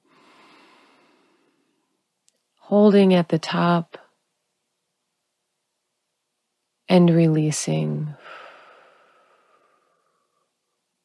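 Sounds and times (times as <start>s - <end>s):
deep inhale through the nose during a relaxation breathing exercise: 0.0s - 1.8s, 8.2s - 10.5s
speech: 2.7s - 4.0s, 6.9s - 8.4s.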